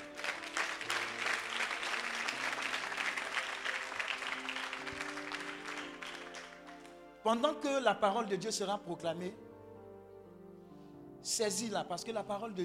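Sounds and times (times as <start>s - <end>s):
church congregation applauding: 0.0s - 7.2s
speech: 7.2s - 9.4s, 11.4s - 12.6s.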